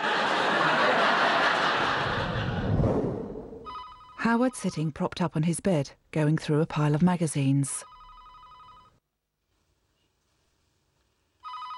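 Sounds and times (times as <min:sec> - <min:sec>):
laughter: 0:00.0 - 0:02.8
telephone ringing with electronic trilling tone: 0:03.7 - 0:04.8, 0:07.8 - 0:09.0, 0:11.4 - 0:11.7
speech: 0:04.2 - 0:07.9.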